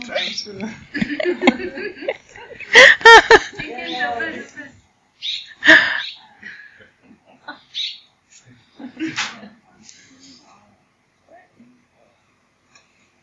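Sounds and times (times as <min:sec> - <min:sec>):
short sharp bird calls: 0:00.0 - 0:00.6, 0:05.2 - 0:06.3, 0:07.5 - 0:08.1
laughter: 0:00.0 - 0:04.8, 0:08.8 - 0:09.7.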